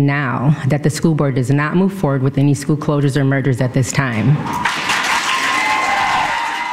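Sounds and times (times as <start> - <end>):
speech: 0.0 - 4.9
meeting audience applauding: 4.5 - 6.7.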